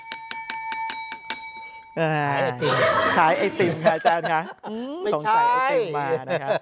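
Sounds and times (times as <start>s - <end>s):
small hand bell ringing: 0.0s - 2.1s
speech: 2.0s - 6.5s
laughter: 2.4s - 6.5s.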